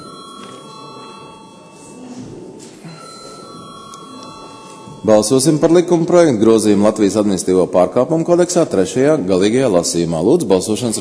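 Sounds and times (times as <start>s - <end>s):
parliament chamber electric bell ringing before a vote: 0.0s - 6.1s
faint room murmur: 0.0s - 11.0s
speech: 5.0s - 11.0s.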